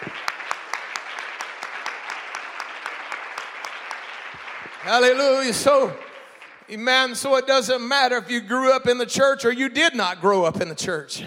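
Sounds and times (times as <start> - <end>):
audience clapping hands in a steady rhythm: 0.0 - 8.2
speech: 4.8 - 6.0, 6.7 - 11.2.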